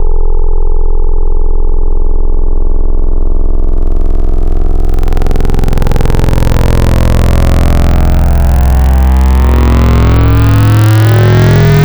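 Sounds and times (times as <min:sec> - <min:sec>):
square synth wavetable tone: 0:00.3 - 0:11.8.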